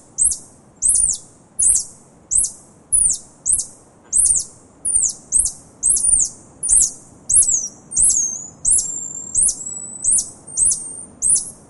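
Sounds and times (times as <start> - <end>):
faint low background hiss: 0.0 - 11.6
tarsier calling with high downward-hooked chirps: 0.0 - 11.6.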